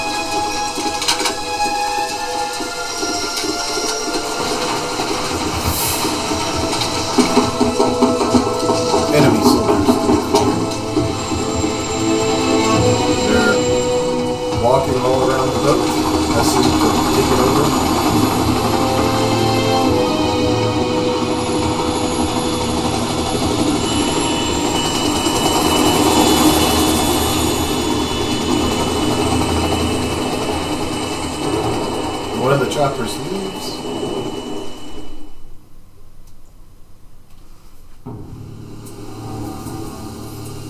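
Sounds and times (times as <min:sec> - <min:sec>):
helicopter engine roaring: 0:00.0 - 0:35.3
voices: 0:08.9 - 0:10.6, 0:14.5 - 0:18.3.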